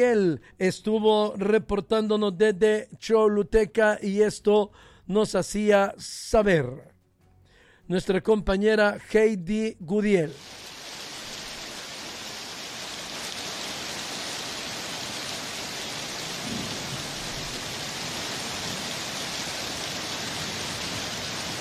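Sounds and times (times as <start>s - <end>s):
speech: 0.0s - 6.9s, 7.9s - 10.7s
heavy rain downpour in Choluteca: 10.3s - 21.5s.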